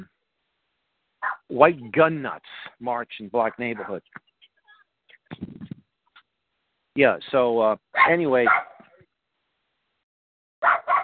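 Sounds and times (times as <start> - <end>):
dogs barking sharply: 1.2 - 1.5, 3.7 - 4.0, 8.0 - 8.9, 10.6 - 11.0
drawn-out whiny dog yelp: 1.2 - 1.5, 8.0 - 8.8, 10.6 - 11.0
speech: 1.5 - 4.3, 5.3 - 5.6, 7.0 - 8.7.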